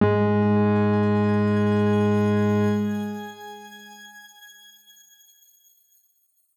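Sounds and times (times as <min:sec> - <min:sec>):
grain note G sharp 2 played mezzo-forte: 0:00.7 - 0:05.2.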